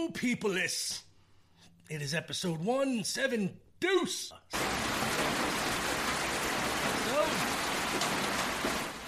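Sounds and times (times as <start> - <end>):
speech: 0.2 - 1.1, 1.9 - 4.8
steady rain pattering on a shed roof: 4.5 - 9.0.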